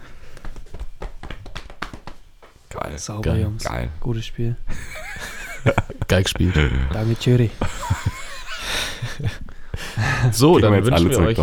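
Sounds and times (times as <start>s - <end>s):
several people patting each other on the shoulders: 0.0s - 2.9s, 4.8s - 9.4s
speech: 2.7s - 8.1s, 8.7s - 9.4s, 10.2s - 11.4s
laughter: 4.7s - 11.4s.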